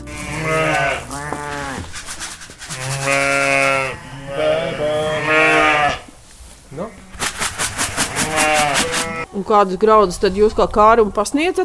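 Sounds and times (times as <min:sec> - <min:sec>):
crossbreed sheep and rams bleating in a farm barn in Latvia: 0:00.0 - 0:02.0, 0:02.7 - 0:07.2, 0:07.9 - 0:09.6
busy farm barn noise: 0:00.0 - 0:11.6
speech: 0:09.5 - 0:11.6.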